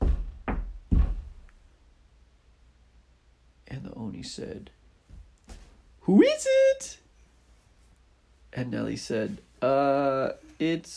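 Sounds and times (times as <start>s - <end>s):
firm knocks on a door: 0.0s - 1.4s
speech: 4.2s - 4.8s, 6.1s - 7.0s, 8.5s - 10.9s.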